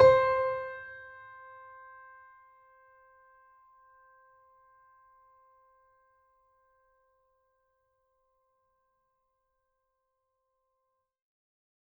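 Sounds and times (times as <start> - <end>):
mini grand piano: 0.0 - 1.0.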